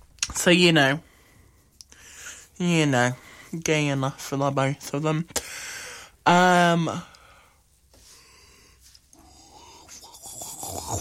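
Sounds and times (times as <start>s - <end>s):
speech: 0.4s - 1.1s, 2.6s - 5.6s, 6.3s - 7.1s
loud drawn-out human yawn: 9.2s - 10.9s.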